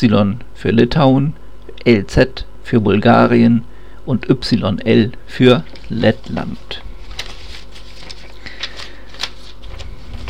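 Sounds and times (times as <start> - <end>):
speech: 0.0 - 6.8
paper pages being flipped: 5.6 - 10.2.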